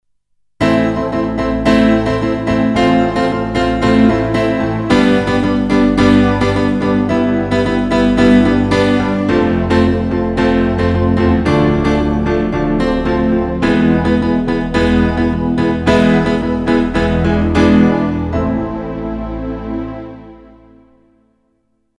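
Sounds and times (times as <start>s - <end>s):
piano: 0.6s - 21.9s.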